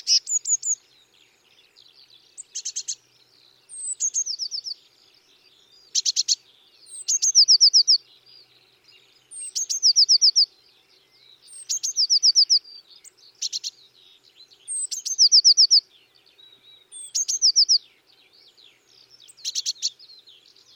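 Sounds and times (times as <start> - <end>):
Eurasian blue tit calling: 0.0 - 0.8, 2.4 - 3.0, 3.7 - 4.8, 5.9 - 8.0, 9.3 - 10.5, 11.4 - 13.8, 14.7 - 15.8, 16.9 - 17.9, 19.1 - 20.0.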